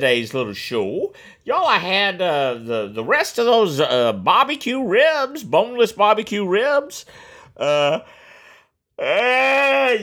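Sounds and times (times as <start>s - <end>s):
speech: 0.0s - 8.2s, 9.0s - 10.0s
person yawning: 9.0s - 10.0s.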